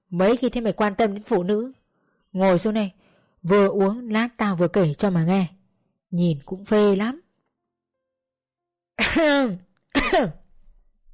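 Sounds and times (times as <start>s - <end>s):
speech: 0.1s - 7.2s, 9.0s - 10.4s
woman clearing her throat: 9.0s - 10.5s.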